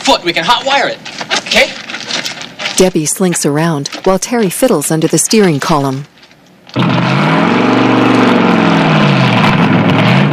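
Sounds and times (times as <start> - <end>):
speech: 0.0 - 1.8, 2.8 - 6.1, 6.8 - 7.7
hot rod engine with header plugs off backing out of a garage: 6.7 - 10.3.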